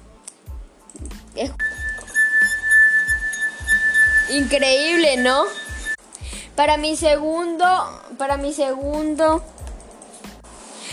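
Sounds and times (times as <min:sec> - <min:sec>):
speech: 0:01.4 - 0:01.8, 0:04.3 - 0:05.6, 0:06.6 - 0:09.5
child's finger circling the rim of a mini wine glass holding water: 0:01.6 - 0:06.0.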